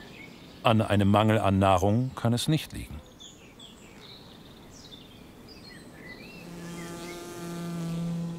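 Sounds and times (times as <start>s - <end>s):
speech: 0.6s - 3.1s
honeybee colony buzzing: 6.2s - 8.3s.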